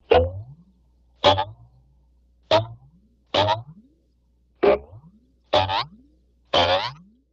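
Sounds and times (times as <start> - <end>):
boing sounds: 0.0 - 0.6, 1.2 - 1.7, 2.5 - 3.8, 4.6 - 7.1.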